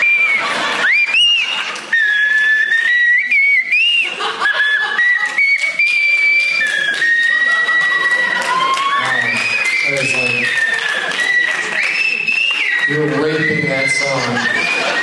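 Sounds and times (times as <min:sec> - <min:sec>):
person whistling a wavering song melody: 0:00.0 - 0:15.0
breathy snickers and laughter: 0:00.1 - 0:02.6, 0:03.8 - 0:08.5, 0:14.0 - 0:15.0.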